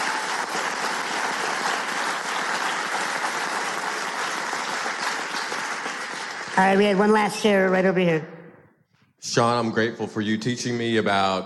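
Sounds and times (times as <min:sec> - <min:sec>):
sizable audience applause: 0:00.0 - 0:07.1
speech: 0:06.6 - 0:08.3, 0:09.2 - 0:11.4.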